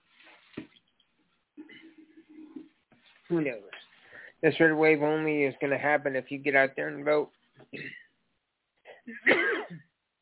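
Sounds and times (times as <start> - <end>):
person clearing a dry throat: 1.6 - 2.6, 7.8 - 8.1, 8.9 - 9.9
speech: 3.3 - 3.8, 4.4 - 7.4
person coughing from dry throat: 7.8 - 8.1, 8.9 - 9.9.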